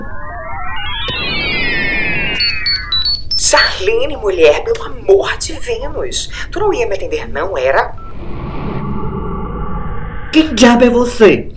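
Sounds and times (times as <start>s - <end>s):
wristwatch ringing with an electronic alarm tone: 0.0s - 4.1s
sharp beeps: 0.0s - 4.2s, 8.0s - 8.2s
dense wash of noise: 0.0s - 5.2s, 8.0s - 11.0s
speech: 3.8s - 8.0s, 10.3s - 11.5s.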